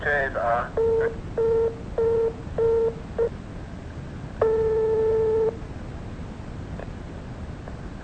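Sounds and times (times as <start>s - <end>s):
speech: 0.0s - 1.4s
telephone busy tone after a call was cut off: 0.8s - 3.3s, 4.4s - 5.6s.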